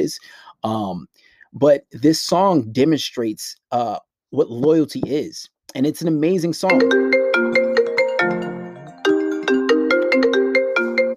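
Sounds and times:
speech: 0.0 - 7.2
melodic phone ringtone of quick plucked electronic notes: 6.7 - 11.1.

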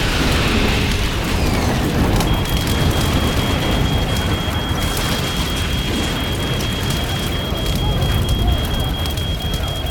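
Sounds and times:
airplane crashing into an office tower in a city: 0.0 - 6.4
debris crackling and splintering: 0.0 - 9.8.

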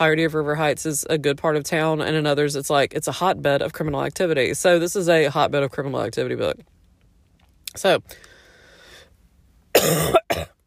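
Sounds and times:
speech: 0.0 - 6.8, 7.7 - 8.3, 9.8 - 10.5
harsh loud coughs: 9.8 - 10.6.

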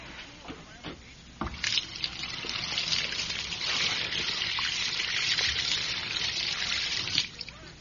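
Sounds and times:
water running into a sink and draining freely: 1.4 - 7.6.

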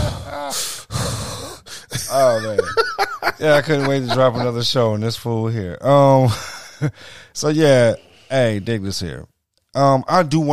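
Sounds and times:
heavy breathing against a microphone: 0.0 - 2.0, 6.3 - 8.7
speech: 0.5 - 0.8, 2.1 - 10.5
laughter: 1.9 - 4.9.

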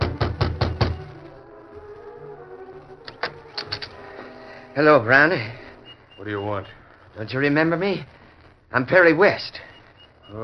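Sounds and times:
knocking on a wooden cabin door: 0.0 - 1.1
speech: 4.8 - 5.6, 6.2 - 9.7.

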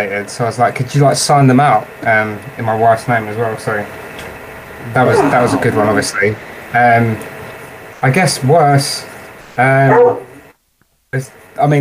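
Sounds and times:
speech: 0.0 - 4.1, 4.8 - 7.3, 8.0 - 10.3, 11.1 - 11.7
dog barking at the door: 5.0 - 6.2, 9.8 - 10.4.

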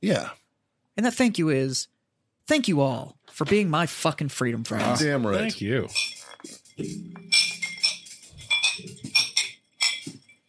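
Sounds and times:
speech: 0.0 - 0.4, 1.0 - 1.9, 2.5 - 7.4
glasses clinking in a toast: 4.9 - 10.4.

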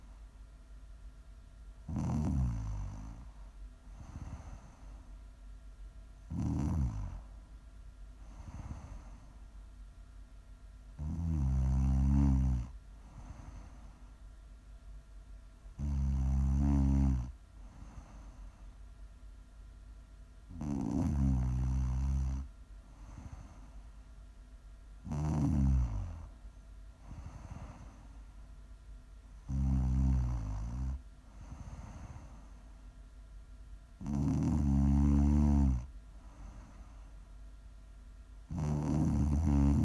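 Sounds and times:
snoring: 1.9 - 5.0, 6.3 - 7.3, 8.2 - 9.3, 11.0 - 14.0, 15.8 - 18.4, 20.5 - 23.7, 25.0 - 26.3, 27.0 - 28.1, 29.4 - 32.6, 34.0 - 37.0, 38.5 - 39.8.

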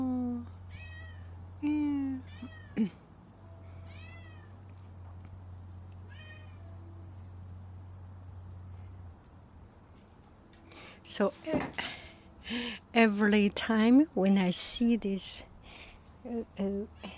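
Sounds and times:
steady low engine-like hum: 0.0 - 17.1
cat meowing: 0.7 - 1.3, 2.2 - 2.8, 3.8 - 4.5, 6.1 - 6.6
speech: 11.2 - 15.5, 16.3 - 17.1.

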